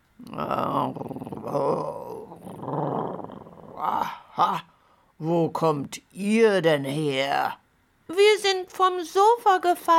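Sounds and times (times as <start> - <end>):
speech: 0.2 - 1.6, 5.2 - 7.6, 8.2 - 9.9
lion growling in the Serengeti: 0.4 - 4.2.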